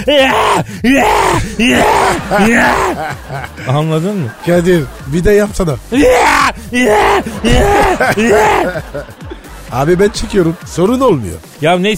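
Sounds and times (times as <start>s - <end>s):
man imitating heavy labored panting after climbing stairs: 0.0s - 3.7s, 6.6s - 7.4s
laughter: 0.0s - 11.6s
speech: 0.0s - 11.9s.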